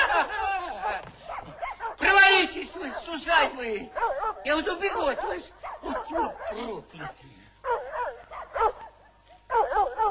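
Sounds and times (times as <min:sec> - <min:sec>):
laughter: 0:00.0 - 0:01.7
dog barking and yelping: 0:00.8 - 0:02.3, 0:03.8 - 0:10.0
speech: 0:03.1 - 0:08.2.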